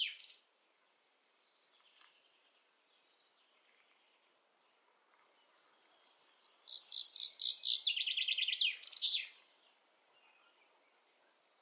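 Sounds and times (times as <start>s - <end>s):
common chaffinch song fragment: 0.0s - 11.5s.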